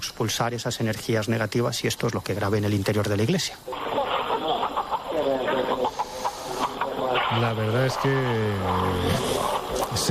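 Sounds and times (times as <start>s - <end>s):
steady hiss of noise in an echoing room: 0.0s - 10.0s
speech: 0.1s - 4.0s, 7.3s - 10.0s
murmur of voices in an echoing room: 3.6s - 10.0s
chicken clucking in agitated bursts during a healing ritual: 3.8s - 10.0s.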